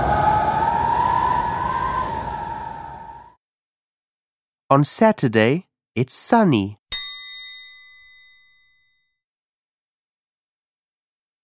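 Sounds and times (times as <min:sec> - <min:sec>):
rushing noise bed: 0:00.0 - 0:03.4
whistling howl of wind: 0:00.0 - 0:03.4
speech: 0:04.7 - 0:06.8.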